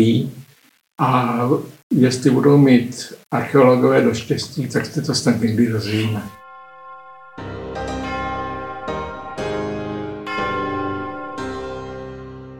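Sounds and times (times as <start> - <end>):
speech: 0.0 - 0.4, 1.0 - 6.4
large church bell ringing: 6.4 - 12.5.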